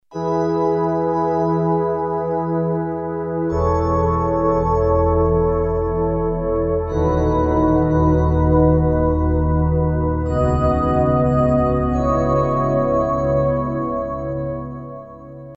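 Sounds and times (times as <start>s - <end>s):
Roland JV2080 church synth pad: 0.4s - 15.5s.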